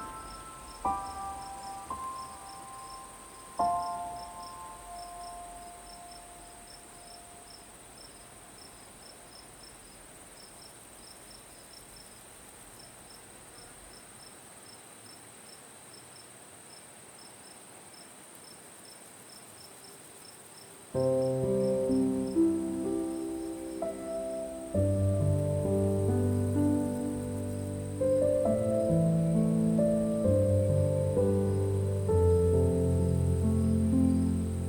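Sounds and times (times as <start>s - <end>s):
piano with low chords and a moving melody: 0.0s - 7.9s, 21.0s - 34.6s
crickets chirping softly at night: 0.0s - 34.6s.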